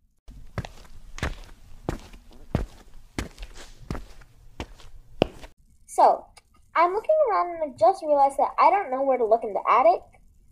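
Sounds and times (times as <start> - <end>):
footsteps walking across an attic floor: 0.3 - 5.5
speech: 6.0 - 10.1.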